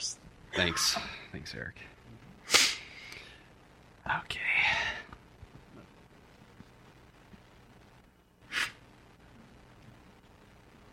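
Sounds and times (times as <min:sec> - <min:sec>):
speech: 0:00.6 - 0:02.0, 0:04.1 - 0:04.6
man sniffing through the nose: 0:02.4 - 0:03.0, 0:08.5 - 0:08.8.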